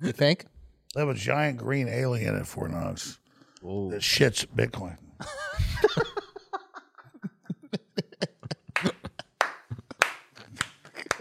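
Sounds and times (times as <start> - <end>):
speech: 0.0 - 5.9
audience laughter: 5.2 - 11.1
sparse audience applause: 8.7 - 11.1.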